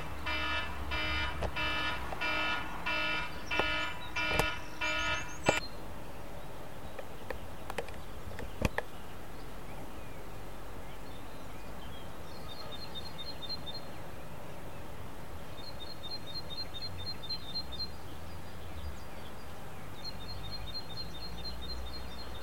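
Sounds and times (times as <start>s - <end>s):
quiet outdoor ambience: 0.0s - 22.4s
mobile phone alarm beeping: 0.3s - 5.6s
sharp clicks: 3.5s - 4.6s, 5.4s - 5.6s, 6.9s - 8.9s.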